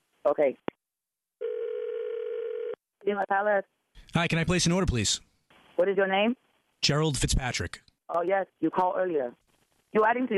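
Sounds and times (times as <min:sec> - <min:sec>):
speech: 0:00.2 - 0:00.7, 0:03.0 - 0:10.3
phone ringing with buzzy electronic tone: 0:01.4 - 0:02.8.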